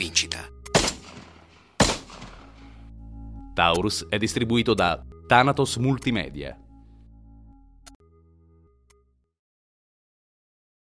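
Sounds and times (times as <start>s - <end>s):
gunshots from a Taurus rifle and pistols: 0.8s - 2.7s
speech: 3.6s - 6.6s.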